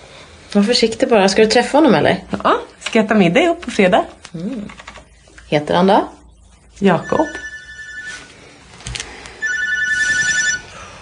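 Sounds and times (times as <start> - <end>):
speech: 0.5 - 4.8, 5.5 - 6.2, 6.8 - 7.4
telephone ringing: 6.9 - 8.4, 9.4 - 10.9.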